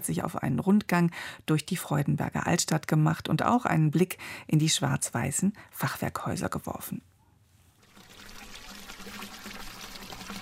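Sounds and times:
speech: 0.0s - 7.1s
water splashing from a small fountain beside a through road in an old town: 7.8s - 10.3s.

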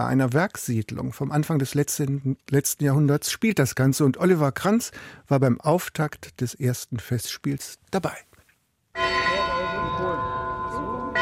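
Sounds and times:
speech: 0.0s - 8.3s
large old mine bell ringing: 9.0s - 11.2s.

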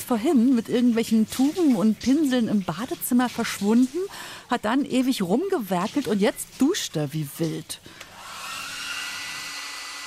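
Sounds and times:
speech: 0.1s - 8.0s
hair dryer blowing in a bathroom: 8.0s - 10.0s.

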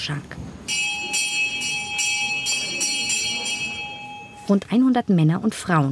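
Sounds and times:
speech: 0.0s - 0.8s, 4.5s - 5.8s
bell ringing in the large hall of a church near Rio de Janeiro: 0.7s - 4.9s.

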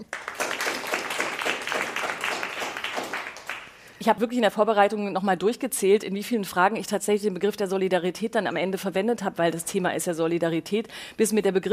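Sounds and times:
audience applauding to welcome a guest: 0.0s - 3.8s
speech: 4.0s - 11.7s.

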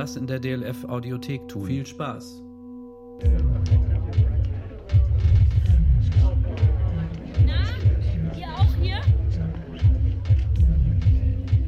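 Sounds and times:
speech: 0.0s - 2.4s, 3.2s - 6.7s
bass beat thumping through the walls: 3.2s - 11.6s
crowd murmur in a queue outside a nightclub: 3.4s - 11.6s.

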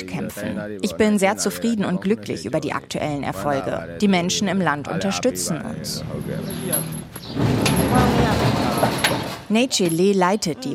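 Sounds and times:
faint voices: 0.0s - 10.7s
speech: 0.0s - 10.7s
sliding door to a clinic rehabilitation room rolling on its track: 6.0s - 9.5s
sliding door clatter: 6.0s - 10.2s.

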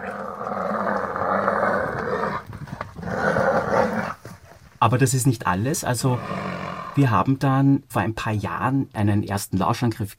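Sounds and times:
mother animal roaring while defending her young against a lion: 0.0s - 4.3s, 6.1s - 7.0s
speech: 4.8s - 10.1s.

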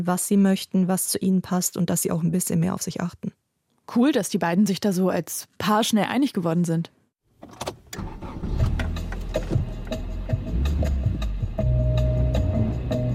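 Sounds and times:
speech: 0.0s - 7.7s
car engine rumbling as the car drives off: 7.4s - 11.6s
car engine cranking and catching: 7.4s - 13.1s.

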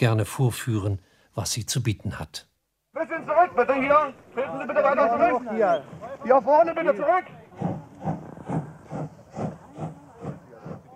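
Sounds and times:
speech: 0.0s - 2.5s, 3.2s - 8.2s
standing steam locomotive hissing: 7.6s - 10.9s
steam locomotive pulsing puff: 7.6s - 10.9s.

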